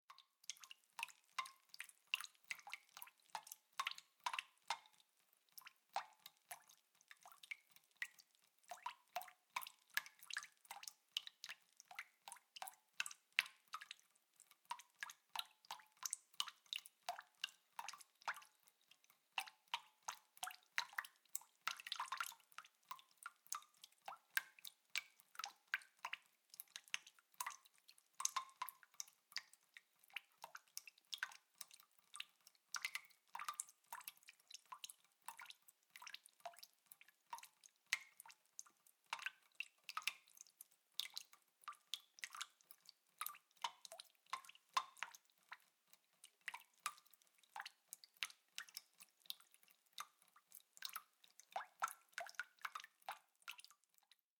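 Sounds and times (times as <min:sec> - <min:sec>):
water from a kitchen leak dripping into a bucket: 0:00.1 - 0:54.3.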